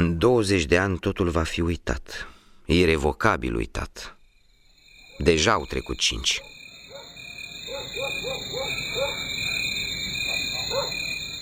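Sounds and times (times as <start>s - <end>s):
speech: 0.2s - 4.2s, 5.2s - 6.5s
shrill chorus of crickets trilling: 4.1s - 11.4s.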